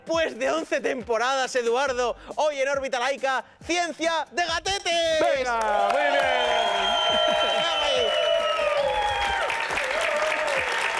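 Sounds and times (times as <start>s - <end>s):
speech: 0.1s - 8.3s
live audience applause: 5.6s - 10.9s.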